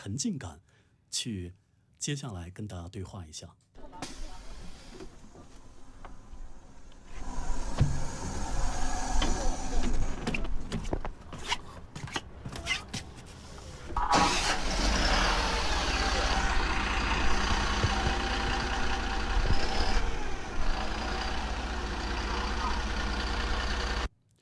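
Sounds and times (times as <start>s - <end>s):
speech: 0.0s - 3.7s
medical bus engine idling: 3.8s - 11.8s, 13.3s - 24.1s
bus doors opening and closing: 3.9s - 16.6s.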